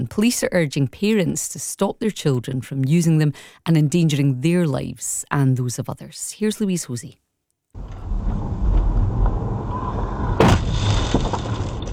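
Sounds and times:
speech: 0.0s - 7.2s
rumbling road and engine traffic noise: 7.8s - 10.4s
high-speed e-motorbike crunching impact into a car: 7.8s - 11.9s.

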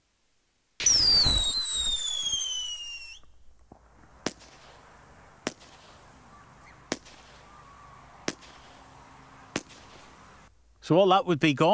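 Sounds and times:
hiss: 0.8s - 10.6s
firework whistling launch: 0.8s - 10.8s
speech: 10.9s - 11.7s.

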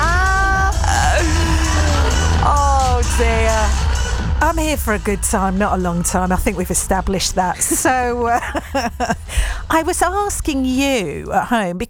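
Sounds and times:
audience member shouting and singing along: 0.0s - 4.0s
packed concert crowd roaring at Wembley: 0.0s - 4.4s
laughter: 0.0s - 6.0s, 6.9s - 9.5s
speech: 4.5s - 11.8s.

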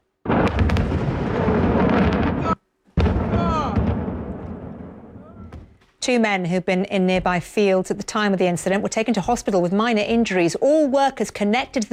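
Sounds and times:
crackling bursts and pops: 0.0s - 6.0s
fireworks factory explosion roaring: 0.3s - 5.3s
speech: 6.1s - 11.9s.

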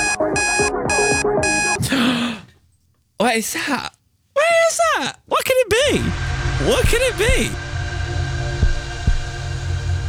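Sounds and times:
small alarm clock beeping: 0.0s - 1.8s, 6.0s - 9.9s
song playing from a smart speaker: 0.0s - 1.8s
speech: 3.2s - 4.0s, 4.8s - 7.7s
burst of broadband noise: 5.7s - 10.0s.

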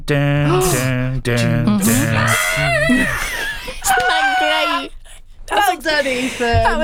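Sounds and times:
speech: 0.1s - 6.8s
shrill screechy voice singing a cappella: 0.4s - 5.0s
laughter: 0.4s - 6.8s.

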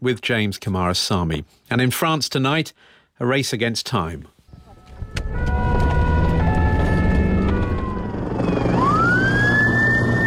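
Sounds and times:
speech: 0.0s - 4.4s
emergency sirens wailing amid wildfires in southern France: 4.5s - 10.2s
heavy engine rumble: 4.6s - 10.2s.

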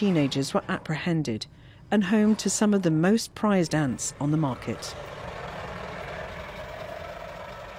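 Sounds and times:
speech: 0.0s - 5.2s
trucks passing on a winding highway around the Great Rift Valley in Kenya: 3.8s - 7.7s.

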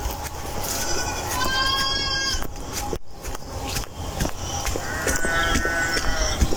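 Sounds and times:
noisy farmyard background: 0.0s - 6.5s
pygmy goats bleating for food: 0.6s - 2.5s, 4.7s - 6.5s.

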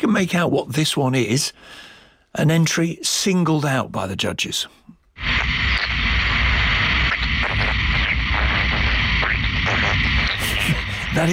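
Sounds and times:
speech: 0.0s - 5.5s, 11.2s - 11.3s
data centre machinery hum with whirring roar and airy hiss: 5.2s - 11.3s.

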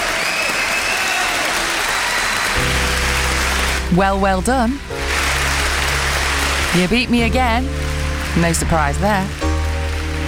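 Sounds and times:
crowd applauding: 0.0s - 10.2s
low hum: 2.6s - 10.2s
speech: 3.9s - 5.0s, 6.8s - 9.4s.

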